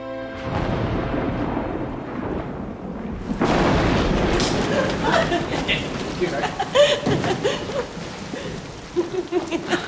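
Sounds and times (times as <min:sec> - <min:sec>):
low rumbling: 0:00.4 - 0:09.8
sudden heavy rain pouring down: 0:00.4 - 0:09.8
people laughing: 0:04.6 - 0:09.8
people talking: 0:04.8 - 0:07.1.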